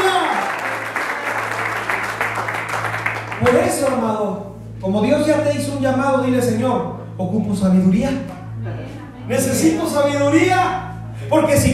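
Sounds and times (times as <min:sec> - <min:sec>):
crowd at a church sermon applauding: 0:00.0 - 0:04.1
low constant hum: 0:00.0 - 0:11.7
speech: 0:03.4 - 0:08.4, 0:09.3 - 0:11.7.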